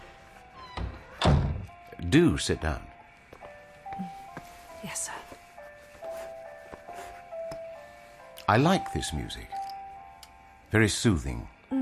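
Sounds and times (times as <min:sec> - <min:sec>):
door closing: 0:00.6 - 0:01.7
speech: 0:02.0 - 0:02.9, 0:04.9 - 0:05.2, 0:08.5 - 0:09.6, 0:10.7 - 0:11.7.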